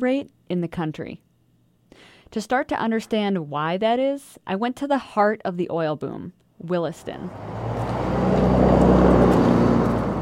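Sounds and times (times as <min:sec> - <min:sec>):
speech: 0:00.0 - 0:01.3, 0:01.9 - 0:07.8
heavy truck engine rumbling past on a street: 0:07.0 - 0:10.2
steady street traffic noise: 0:07.0 - 0:10.2.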